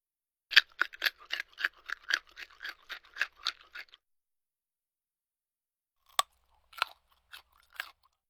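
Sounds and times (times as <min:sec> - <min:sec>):
biting crispy fried bacon: 0:00.5 - 0:04.0, 0:06.1 - 0:08.2.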